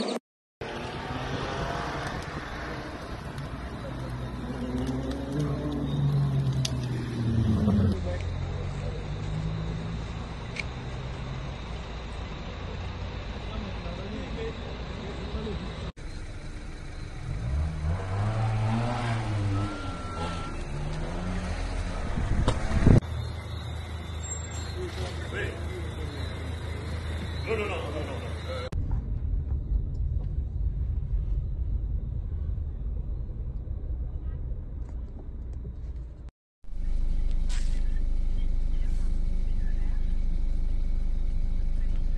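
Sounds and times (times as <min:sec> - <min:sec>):
car engines revving: 0:00.6 - 0:28.8, 0:36.8 - 0:42.1
traffic rumble from idling and slowly moving cars at a blocked motorway roundabout: 0:00.6 - 0:42.1.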